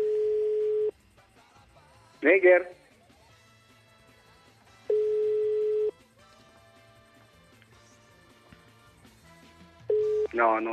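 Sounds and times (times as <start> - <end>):
telephone ringing tone from an unanswered call: 0.0 - 0.9, 4.9 - 6.0, 9.9 - 10.7
speech: 2.2 - 2.8, 10.4 - 10.7.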